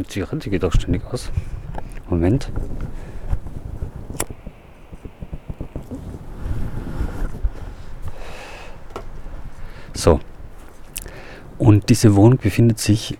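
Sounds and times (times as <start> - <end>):
speech: 0.0 - 3.0, 10.0 - 10.3, 11.6 - 13.1
gusty wind buffeting the microphone outdoors beside a street: 0.0 - 13.1
rustling: 0.0 - 13.1
sharp clicks and knocks: 1.7 - 8.2.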